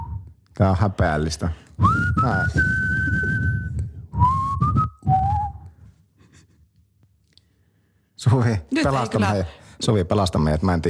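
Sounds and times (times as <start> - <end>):
person whistling a tune: 0.0 - 0.5, 1.8 - 5.9
speech: 0.6 - 3.3, 8.3 - 10.8.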